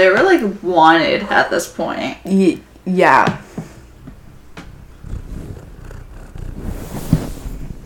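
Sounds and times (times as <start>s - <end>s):
speech: 0.0s - 3.4s
cat purring against the microphone: 4.0s - 7.8s.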